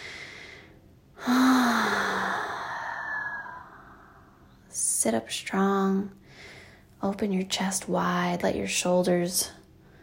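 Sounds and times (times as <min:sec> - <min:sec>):
deep breath during a guided self-care exercise: 0:00.0 - 0:04.4
speech: 0:05.0 - 0:06.2, 0:07.0 - 0:09.6.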